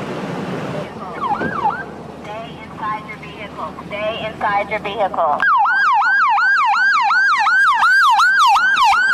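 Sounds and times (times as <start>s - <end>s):
tribal fire department fire rescue vehicle siren wailing and yelping: 0.9s - 2.0s, 5.4s - 9.1s
speech: 3.7s - 5.5s.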